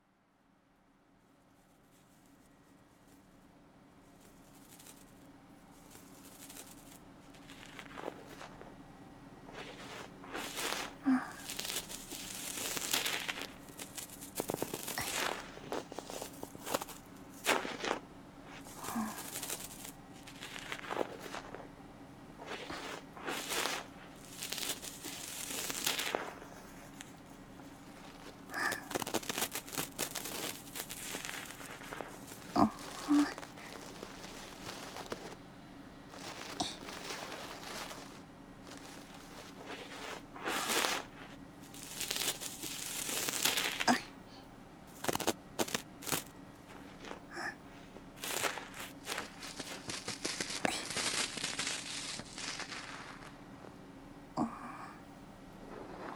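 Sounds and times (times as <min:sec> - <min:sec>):
bamboo ear pick cleaning the left ear: 0:09.5 - 0:44.2, 0:44.9 - 0:53.8, 0:55.5 - 0:56.1.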